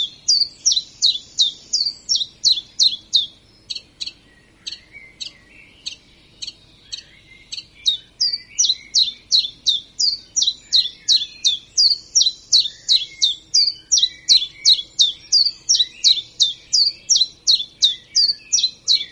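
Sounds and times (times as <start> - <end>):
common chiffchaff singing: 0.0 - 19.1
faint lower twitter: 0.0 - 19.1.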